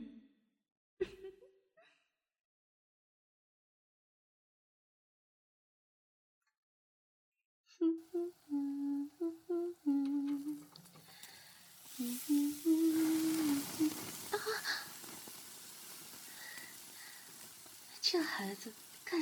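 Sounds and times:
speech: 0:07.8 - 0:09.4, 0:18.1 - 0:19.2
eggs sizzling in a frying pan in a kitchen: 0:08.0 - 0:19.2.

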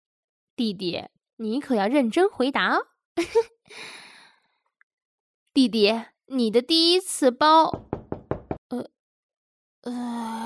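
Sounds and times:
speech: 0:00.6 - 0:04.0, 0:05.6 - 0:08.0, 0:08.7 - 0:09.0, 0:09.8 - 0:10.4
knocking on a door: 0:07.7 - 0:08.6.

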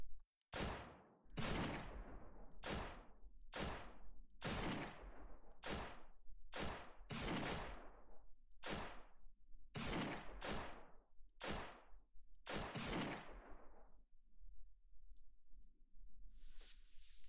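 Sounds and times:
gunfire aimed at a small group of zombies: 0:00.5 - 0:13.8.

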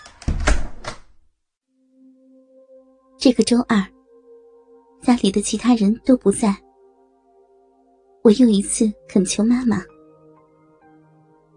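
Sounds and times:
bedroom door slamming shut with a heavy booming thud: 0:00.1 - 0:01.2
speech: 0:03.2 - 0:04.0, 0:05.1 - 0:06.6, 0:08.2 - 0:09.9.

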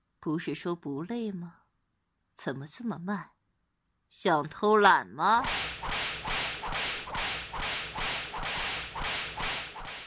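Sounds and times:
speech: 0:00.2 - 0:01.6, 0:02.4 - 0:03.3, 0:04.1 - 0:05.7
whip cracking: 0:05.4 - 0:10.0.

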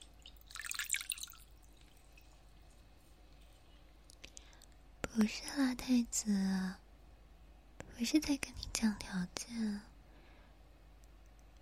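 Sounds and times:
water dripping and splashing while someone is being bathed: 0:00.0 - 0:04.5
speech: 0:05.2 - 0:06.8, 0:08.0 - 0:09.9.

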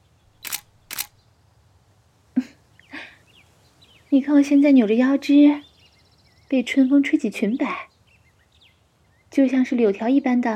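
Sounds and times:
camera shutter clicks taking photos: 0:00.3 - 0:01.2
speech: 0:04.1 - 0:05.7, 0:06.5 - 0:07.9, 0:09.3 - 0:10.5.

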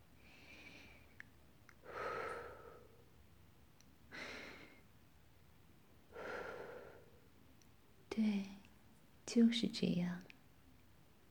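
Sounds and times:
deep breathing in and out: 0:01.8 - 0:03.1, 0:04.1 - 0:04.9, 0:06.1 - 0:07.3
speech: 0:09.3 - 0:10.3.

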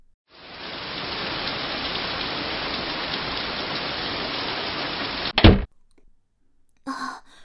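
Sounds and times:
heavy rain falling: 0:00.3 - 0:05.7
thump: 0:05.4 - 0:05.7
soft breath or sigh: 0:06.9 - 0:07.4.

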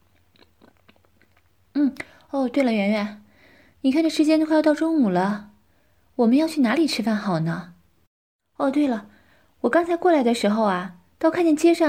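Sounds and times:
chewing fruit from a fruit platter: 0:00.0 - 0:02.3
speech: 0:01.9 - 0:03.2, 0:03.8 - 0:05.5, 0:06.2 - 0:07.7, 0:08.6 - 0:11.8.

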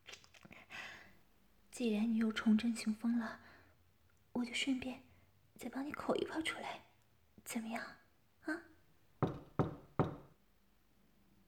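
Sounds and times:
speech: 0:01.8 - 0:03.5, 0:04.4 - 0:08.7
firm knocks on a wooden door: 0:09.2 - 0:10.3.

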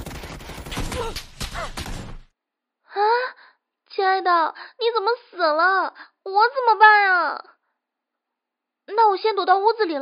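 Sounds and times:
video game gunfire: 0:00.0 - 0:02.3
speech: 0:01.0 - 0:01.8, 0:04.1 - 0:07.5, 0:08.9 - 0:10.0.

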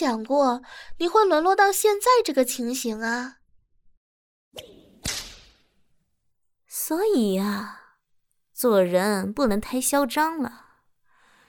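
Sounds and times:
speech: 0:00.0 - 0:03.4, 0:04.5 - 0:05.2, 0:06.8 - 0:07.8, 0:08.6 - 0:10.6
whip swishing through the air: 0:04.6 - 0:05.7.

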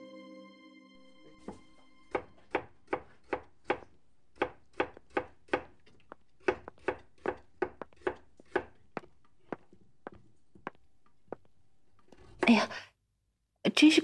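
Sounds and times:
knife chopping vegetables on a cutting board: 0:01.5 - 0:10.8
speech: 0:12.5 - 0:12.9, 0:13.8 - 0:14.0.

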